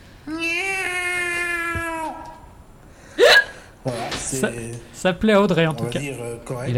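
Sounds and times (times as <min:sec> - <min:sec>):
person imitating a cat meowing: 0:00.3 - 0:02.5
speech: 0:03.8 - 0:06.7.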